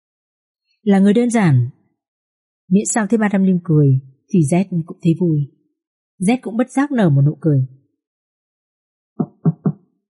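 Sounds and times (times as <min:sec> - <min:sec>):
speech: 0:00.8 - 0:01.8, 0:02.7 - 0:05.6, 0:06.2 - 0:07.8
knocking on a door: 0:09.2 - 0:09.8.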